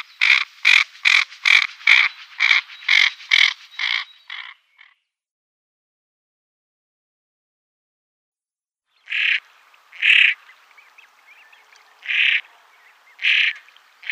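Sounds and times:
female common pochard rasping calls: 0.2 - 4.6, 9.1 - 10.5, 12.0 - 12.5, 13.2 - 14.1.

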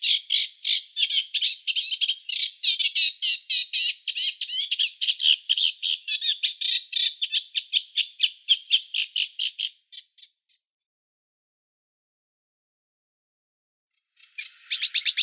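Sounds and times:
Eurasian reed warbler song with chattering grating notes: 0.0 - 10.4, 14.1 - 15.2.

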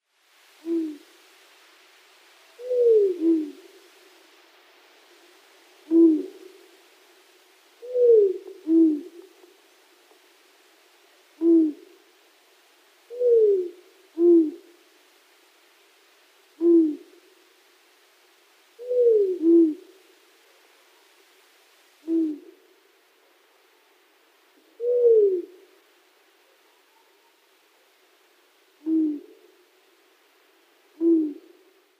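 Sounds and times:
Long-eared Owl pair display calls: 0.6 - 1.0, 2.6 - 3.6, 5.9 - 6.4, 11.4 - 11.8, 13.1 - 14.6, 16.6 - 17.0, 18.8 - 19.8, 22.0 - 22.5, 24.8 - 25.6, 28.8 - 29.4, 31.0 - 31.5.

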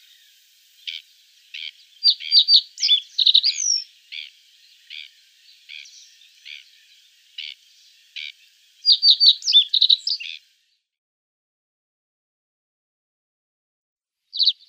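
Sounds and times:
reed bunting singing: 0.0 - 10.6, 14.3 - 14.6.

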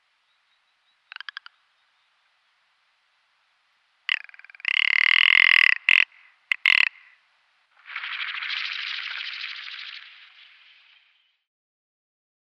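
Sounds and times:
male ptarmigan display rattled croak: 1.1 - 1.6, 4.1 - 7.2, 7.8 - 11.2.

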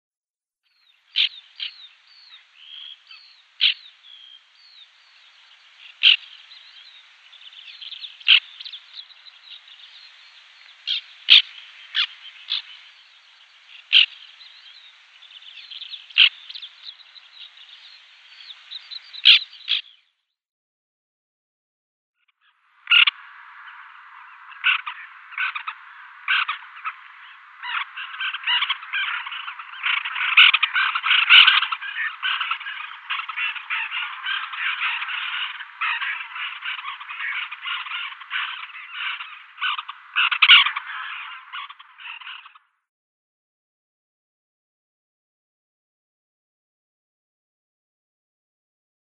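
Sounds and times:
White-winged Tern calling: 1.0 - 20.0, 22.5 - 42.6.

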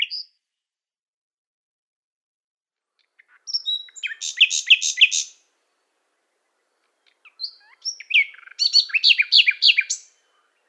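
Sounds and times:
Common Nightingale song with whistles, sweeping notes and rattling trill: 0.0 - 0.4, 3.0 - 10.6.

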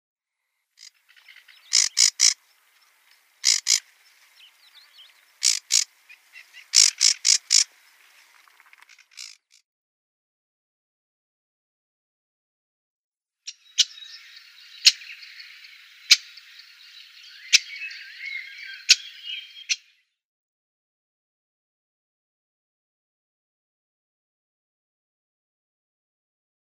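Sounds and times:
sedge warbler calling: 0.8 - 9.6, 13.5 - 20.0.

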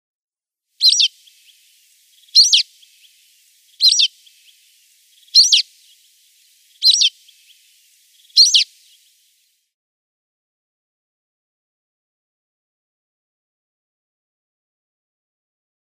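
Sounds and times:
rock sparrow nestlings calling: 0.8 - 9.4.

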